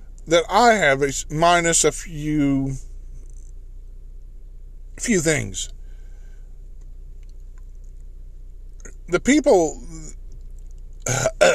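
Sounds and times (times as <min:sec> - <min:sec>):
speech: 0:00.3 - 0:02.9, 0:05.0 - 0:05.8, 0:09.1 - 0:10.2, 0:11.1 - 0:11.5
person clearing throat: 0:11.1 - 0:11.5.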